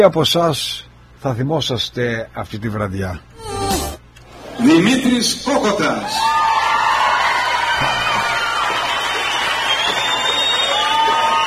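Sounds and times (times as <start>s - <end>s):
speech: 0.0s - 3.5s, 4.6s - 6.4s
large crowd cheering and shouting at a concert: 3.5s - 11.4s.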